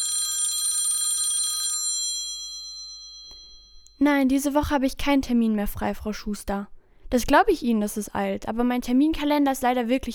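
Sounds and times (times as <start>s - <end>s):
mobile phone ringing with a bright trilling bell-like tone: 0.0s - 3.9s
speech: 4.0s - 10.1s.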